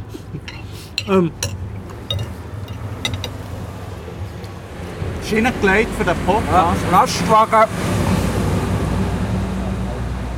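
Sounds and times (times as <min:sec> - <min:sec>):
speech: 0:01.1 - 0:01.5, 0:05.3 - 0:08.0
large truck rolling past: 0:02.4 - 0:10.3.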